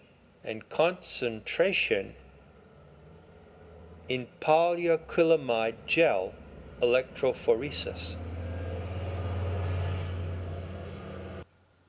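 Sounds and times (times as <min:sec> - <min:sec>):
speech: 0:00.4 - 0:02.2, 0:04.1 - 0:08.3
heavy truck passing on road outside open window: 0:02.1 - 0:11.4.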